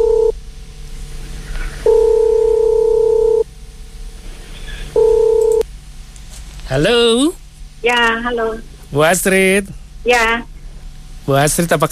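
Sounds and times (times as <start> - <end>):
telephone line buzzing tone while a call is placed: 0.0 - 0.4, 1.8 - 3.5, 4.9 - 5.6
low hum: 0.0 - 11.9
speech: 6.7 - 10.5, 11.3 - 11.9.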